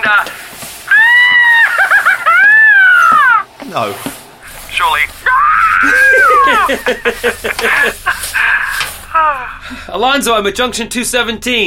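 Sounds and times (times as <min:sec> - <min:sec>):
person imitating a silly high-pitched scream: 0:00.9 - 0:03.4, 0:05.2 - 0:06.8, 0:08.6 - 0:09.6
laughter: 0:01.3 - 0:03.4, 0:04.9 - 0:09.8
speech: 0:03.7 - 0:05.1, 0:06.7 - 0:11.6.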